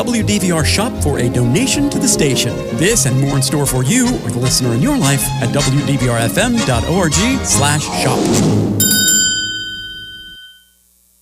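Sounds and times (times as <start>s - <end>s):
speech: 0.0s - 8.9s
hand bell ringing: 8.8s - 10.7s.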